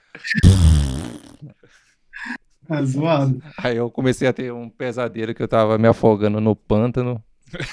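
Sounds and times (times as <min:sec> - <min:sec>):
speech: 0:00.2 - 0:00.6, 0:01.4 - 0:07.7
brief breathy sound: 0:00.4 - 0:01.3
person blowing a mouth-fart noise imitating a fart: 0:00.4 - 0:01.4.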